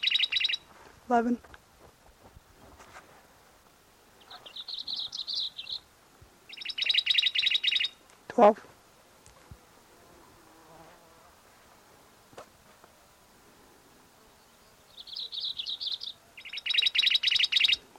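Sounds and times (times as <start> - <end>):
black-throated gray warbler song: 0.0 - 0.7, 4.2 - 8.0, 14.2 - 17.9
hiss: 0.0 - 17.9
speech: 1.1 - 1.6, 8.4 - 8.7.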